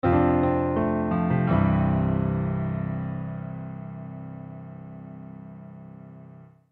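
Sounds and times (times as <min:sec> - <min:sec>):
warm piano accent fill: 0:00.0 - 0:06.7.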